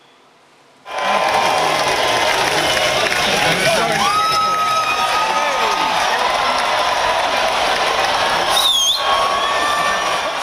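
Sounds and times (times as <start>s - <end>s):
large outdoor crowd cheering and shouting at cheese-rolling race in England: 0.8s - 10.4s
crowd whistles: 8.5s - 9.9s.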